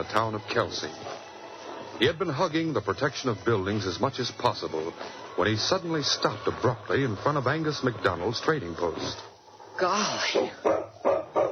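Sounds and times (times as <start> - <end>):
speech: 0.0 - 1.2, 2.0 - 10.8
dog barking: 10.3 - 11.5.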